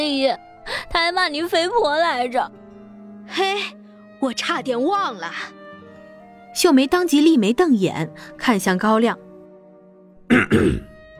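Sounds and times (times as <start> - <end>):
speech: 0.0 - 2.6, 3.3 - 5.6, 6.6 - 9.2, 10.3 - 10.9
faint steady tonal background: 0.0 - 11.1
elderly man clearing his throat: 10.3 - 10.9.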